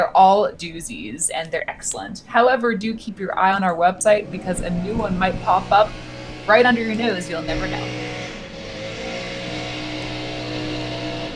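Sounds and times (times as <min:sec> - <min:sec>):
speech: 0:00.0 - 0:08.1
lawn mower engine droning outside: 0:04.0 - 0:11.3.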